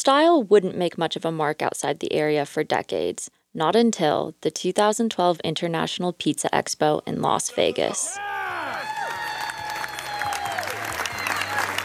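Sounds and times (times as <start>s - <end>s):
speech: 0.0s - 8.4s
crowd cheering: 7.7s - 11.8s
shouts and whistles: 8.0s - 11.8s
crowd applauding: 8.4s - 11.8s.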